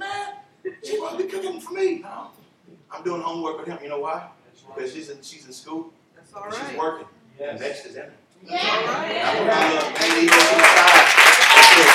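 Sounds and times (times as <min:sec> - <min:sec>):
speech: 0:01.1 - 0:11.2
audience clapping: 0:09.5 - 0:11.9.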